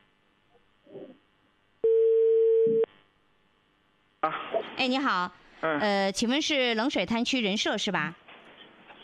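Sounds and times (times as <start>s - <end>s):
telephone line tones while dialling a county labour inspection office: 1.9s - 2.9s
speech: 4.8s - 8.2s.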